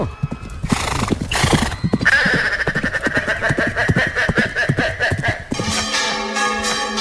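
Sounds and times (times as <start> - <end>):
shrill horse whinnies: 0.0 - 5.5
galloping clip-clop hooves: 0.0 - 6.9
laughter: 2.1 - 6.5
church bells pealing: 5.4 - 6.9.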